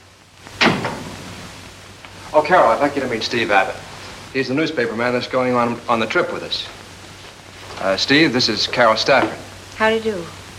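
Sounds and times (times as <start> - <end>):
quiet hiss: 0.0 - 10.5
door opening with a sharp clunk: 0.6 - 1.2
speech: 2.3 - 6.8, 7.8 - 10.4.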